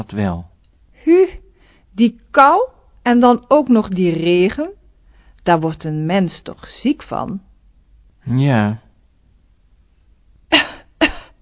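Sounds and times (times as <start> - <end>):
speech: 0.0 - 1.3, 2.0 - 4.8, 5.4 - 7.5, 8.2 - 8.8
person with a cold and a fever coughing: 10.6 - 11.4.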